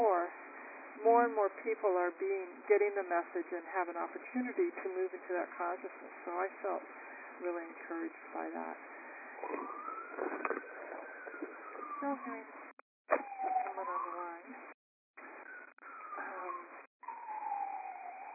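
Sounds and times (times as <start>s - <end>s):
speech: 1.2s - 10.8s, 12.0s - 12.6s
siren wailing through a tinny phone line: 8.4s - 18.3s.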